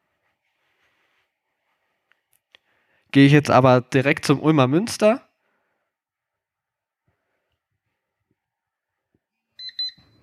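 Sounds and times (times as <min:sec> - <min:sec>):
speech: 0:03.1 - 0:05.2
app alarm clock electronic tone beeping: 0:09.6 - 0:10.2.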